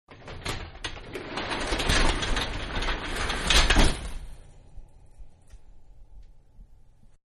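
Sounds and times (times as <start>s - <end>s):
garage door closing: 0.1s - 4.6s.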